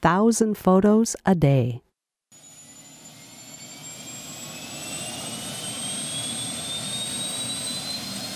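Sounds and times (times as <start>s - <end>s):
speech: 0.0s - 1.9s
helicopter turbine engine roaring with high whine: 2.4s - 8.3s.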